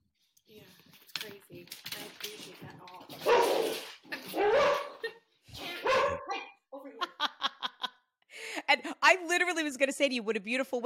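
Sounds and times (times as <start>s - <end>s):
dogs barking excitedly: 3.2s - 3.7s, 4.3s - 5.1s, 5.8s - 6.3s
laughter: 7.0s - 8.1s
speech: 9.4s - 10.8s.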